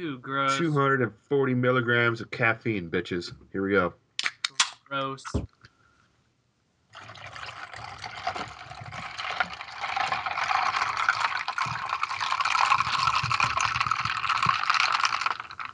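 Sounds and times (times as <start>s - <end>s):
speech: 0.0s - 4.0s, 4.9s - 5.6s
energy drink poured over ice: 6.9s - 15.7s.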